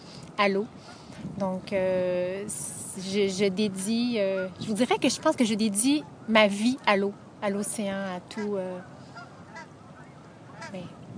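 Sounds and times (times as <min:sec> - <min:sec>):
speech: 0:00.4 - 0:09.0, 0:10.7 - 0:11.0
Canada geese and other geese honking: 0:03.8 - 0:11.1.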